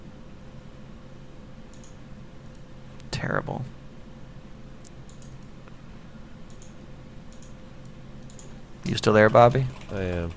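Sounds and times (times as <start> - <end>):
steady low hum: 0.0 - 10.3
speech: 3.2 - 3.8, 8.9 - 10.3
soft computer keyboard typing in an online chat: 6.5 - 7.6, 8.2 - 8.5, 9.2 - 10.3.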